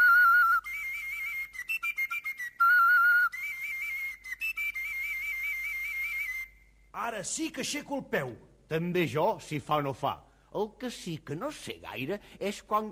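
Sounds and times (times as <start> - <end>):
pipe blown with finger holes covered and uncovered: 0.0 - 6.9
speech: 7.0 - 12.9.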